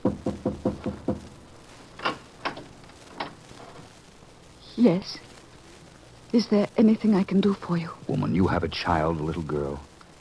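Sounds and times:
knocking on a door: 0:00.0 - 0:01.3
speech: 0:04.8 - 0:05.3, 0:06.3 - 0:09.9.

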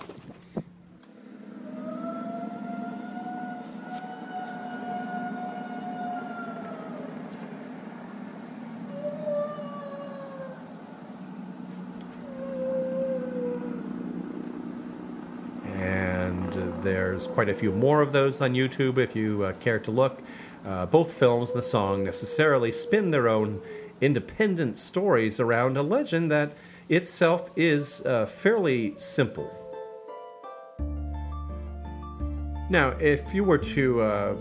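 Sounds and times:
steady low rumble and hiss: 0:00.0 - 0:29.7, 0:32.7 - 0:34.3
eerie wailing cries: 0:01.1 - 0:30.0
speech: 0:16.8 - 0:29.6, 0:32.7 - 0:34.3.

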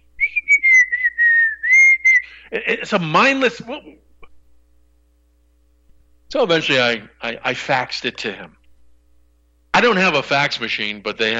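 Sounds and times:
man whistling a wavering tuneless melody: 0:00.2 - 0:02.4
speech: 0:02.5 - 0:04.1, 0:06.3 - 0:08.6, 0:09.8 - 0:11.3.

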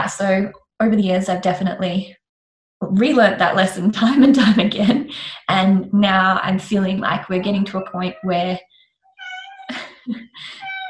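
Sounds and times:
speech: 0:00.0 - 0:02.2, 0:02.8 - 0:08.7, 0:10.1 - 0:10.7
cat meowing: 0:09.2 - 0:09.7, 0:10.6 - 0:10.8.

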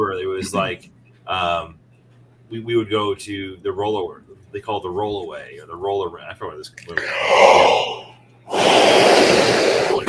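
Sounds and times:
speech: 0:00.1 - 0:01.8, 0:02.5 - 0:09.8
person yawning loudly into a microphone: 0:07.0 - 0:10.0.

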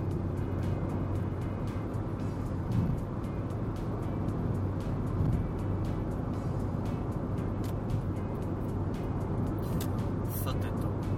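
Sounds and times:
road and engine rumble inside a car overtaking on a highway: 0:00.0 - 0:11.1.

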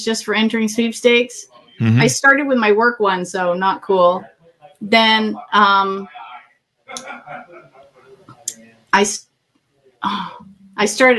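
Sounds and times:
speech: 0:00.0 - 0:06.2, 0:08.9 - 0:09.3, 0:10.0 - 0:11.1
throat clearing: 0:01.8 - 0:02.1
coughing: 0:01.8 - 0:02.2
laughter: 0:01.8 - 0:02.2, 0:06.9 - 0:08.4.

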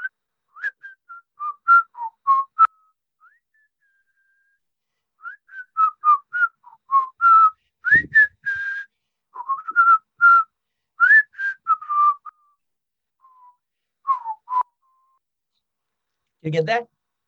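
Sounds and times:
person whistling a melodic song tune: 0:00.0 - 0:04.6, 0:05.2 - 0:12.6, 0:13.2 - 0:15.2
soft low thump: 0:07.9 - 0:08.3
speech: 0:16.4 - 0:16.9.

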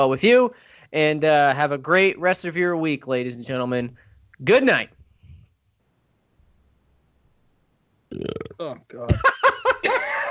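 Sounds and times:
speech: 0:00.0 - 0:05.0, 0:08.1 - 0:09.5
loud drawn-out burp: 0:08.1 - 0:08.7
laughter: 0:09.1 - 0:10.3.

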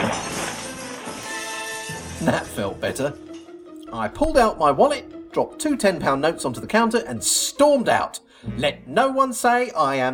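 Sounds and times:
glass panel smashing from a kick: 0:00.0 - 0:02.6
speech: 0:02.2 - 0:03.3, 0:03.9 - 0:10.1.

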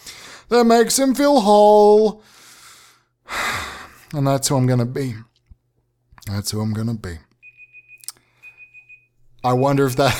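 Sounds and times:
speech: 0:00.5 - 0:02.4, 0:04.1 - 0:05.3, 0:06.2 - 0:07.3, 0:09.4 - 0:10.1
electronic alarm beeping at a single high pitch: 0:07.4 - 0:10.1
laughter: 0:10.0 - 0:10.1.

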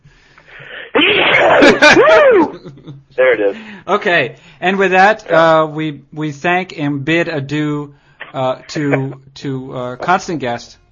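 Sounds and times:
person sneezing: 0:00.4 - 0:02.5
speech: 0:01.7 - 0:10.8.

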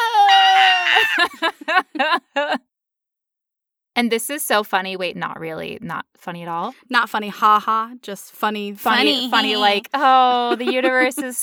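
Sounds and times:
person screaming: 0:00.0 - 0:01.4
laughter: 0:00.3 - 0:02.6, 0:09.0 - 0:11.4
speech: 0:01.1 - 0:02.2, 0:04.0 - 0:11.4.

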